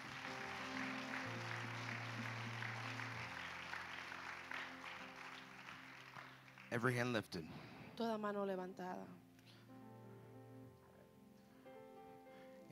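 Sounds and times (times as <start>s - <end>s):
sustained organ or keyboard chords: 0.0s - 6.6s
audience applause: 0.0s - 7.1s
speech: 6.7s - 9.2s.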